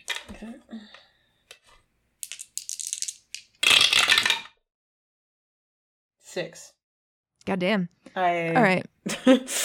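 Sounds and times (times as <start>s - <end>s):
speech: 0.4s - 1.0s, 6.3s - 6.8s, 7.4s - 9.6s
dice rattling when shaken: 2.2s - 4.3s
dice tumbling out in a clattering roll: 2.2s - 4.6s.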